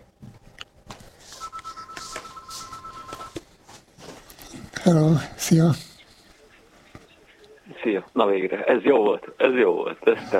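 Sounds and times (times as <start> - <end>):
radio station telephone ringing with electronic two-tone burst: 1.3 - 3.5
speech: 4.8 - 5.9, 8.2 - 10.3.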